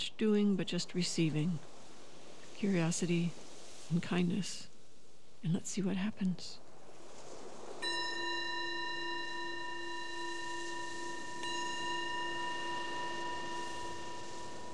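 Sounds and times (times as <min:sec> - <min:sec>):
speech: 0:00.2 - 0:01.8, 0:02.6 - 0:04.7, 0:05.4 - 0:06.6
meditation bell ringing: 0:07.8 - 0:14.7.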